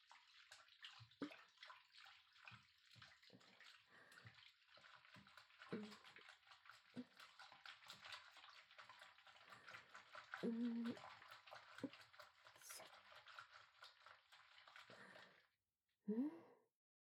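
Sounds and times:
soap worked into a lather by hand: 0.4s - 15.4s
person sighing softly: 16.1s - 16.6s.

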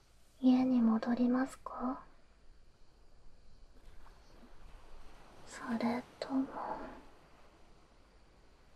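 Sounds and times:
low rumble of cold wind: 0.0s - 8.7s
speech: 0.4s - 2.1s, 5.6s - 6.9s
gentle waves washing in on a beach: 3.2s - 8.7s.

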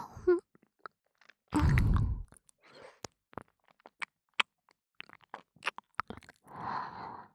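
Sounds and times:
hard candy being chewed and sucked in the mouth: 0.7s - 6.5s.

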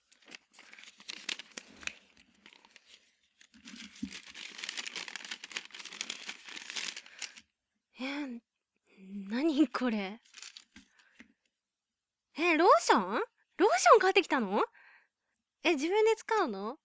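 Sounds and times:
gift wrapping paper crinkling and ripping as it is torn open: 0.0s - 7.4s, 10.2s - 10.9s
speech: 9.7s - 10.3s, 12.6s - 14.8s, 15.6s - 16.8s.

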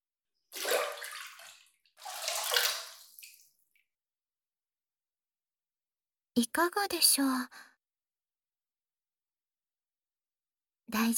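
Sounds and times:
hot water splashing as a foot is dipped into a basin: 0.5s - 3.8s
speech: 6.4s - 7.7s, 10.9s - 11.1s.

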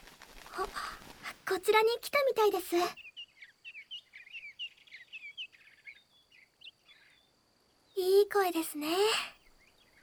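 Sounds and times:
speech: 1.5s - 3.0s, 8.3s - 9.4s
hummingbird chirping: 2.6s - 10.0s.

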